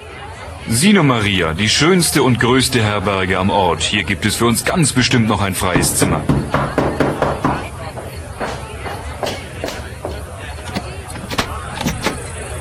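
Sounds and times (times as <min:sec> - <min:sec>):
speech: 0:00.6 - 0:06.8
loud knocking on a wooden door: 0:05.8 - 0:10.3.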